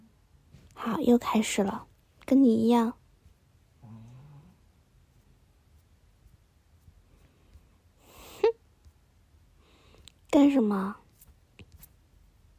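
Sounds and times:
speech: 0.8 - 3.0, 10.6 - 11.0
dog snoring: 3.8 - 4.6.

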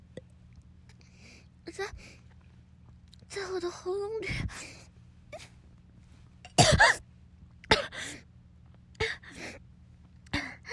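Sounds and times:
low steady hum: 0.0 - 10.7
speech: 1.7 - 2.2, 3.4 - 4.8
person coughing from choking: 6.5 - 7.0, 7.7 - 8.0.

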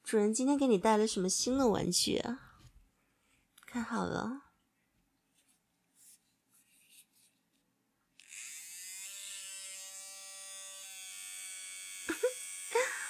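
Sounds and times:
speech: 0.1 - 2.5, 3.8 - 4.4
soft scratching sounds: 5.3 - 7.7
electric shaver buzzing: 8.2 - 13.0.

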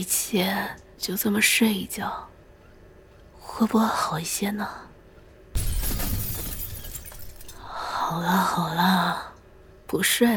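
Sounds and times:
speech: 0.0 - 2.3, 3.4 - 4.9, 8.1 - 9.3, 9.9 - 10.3
glass shattering: 5.6 - 7.6.

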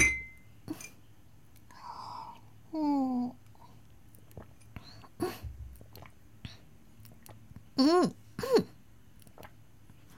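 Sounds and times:
glasses clinking: 0.0 - 1.0
person drinking wine with gulps and wet mouth noises: 4.1 - 7.8, 8.4 - 9.6.

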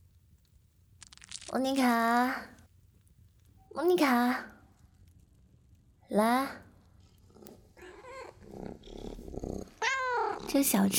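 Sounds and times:
speech: 1.5 - 2.6, 3.8 - 4.6, 6.1 - 6.6, 10.4 - 10.9
cat purring and growly rumbling: 7.0 - 10.9
cat meowing: 9.8 - 10.4.

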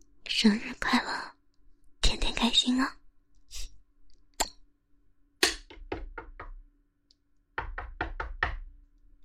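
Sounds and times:
speech: 0.4 - 1.2, 2.4 - 3.0
knocking on a door: 5.7 - 6.6, 7.6 - 8.8.

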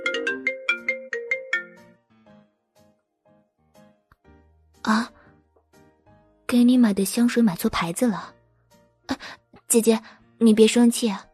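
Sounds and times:
mobile phone ringtone ringing: 0.0 - 1.9
speech: 4.9 - 5.2, 6.5 - 8.4, 9.7 - 11.3.

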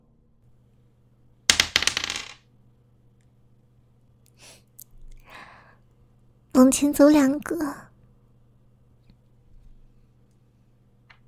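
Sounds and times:
dice clattering and tumbling across a hard surface: 1.5 - 2.4
soft breaths: 4.4 - 5.9
speech: 6.6 - 7.9.

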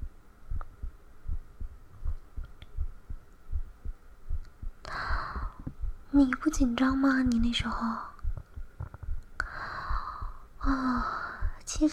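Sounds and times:
rapid heartbeat in double pulses: 0.0 - 6.1, 8.2 - 9.2, 9.8 - 11.8
speech: 6.2 - 8.1.

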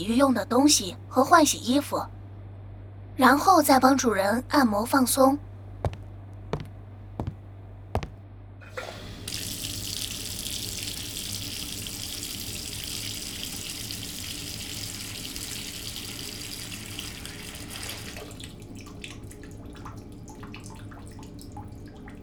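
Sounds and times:
speech: 0.0 - 2.2, 3.2 - 5.5
water gushing from a tap to fill a bath: 8.7 - 22.2.

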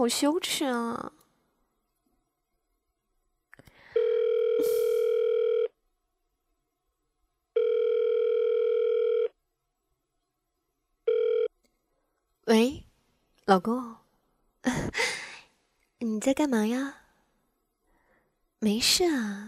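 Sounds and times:
speech: 0.0 - 1.2, 12.5 - 12.8, 13.5 - 14.0, 16.0 - 17.0, 18.6 - 19.4
phone ringback tone pulsing electronic buzz: 4.0 - 5.7, 7.6 - 9.3, 11.1 - 11.5.

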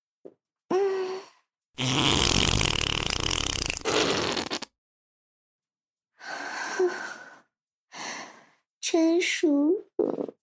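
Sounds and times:
long loud raspy fart: 1.8 - 4.8, 10.0 - 10.4
speech: 9.0 - 10.4.

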